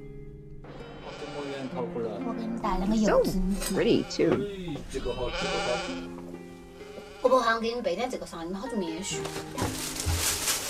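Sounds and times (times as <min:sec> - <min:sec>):
sheep bleating: 0:00.7 - 0:06.2, 0:06.8 - 0:07.8
speech: 0:01.7 - 0:06.2, 0:07.2 - 0:10.0.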